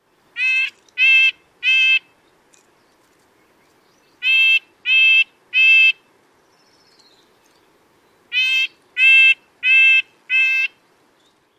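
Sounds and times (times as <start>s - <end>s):
Red-breasted Nuthatch tooting calls: 0.4s - 2.1s, 4.0s - 6.0s, 8.3s - 10.8s.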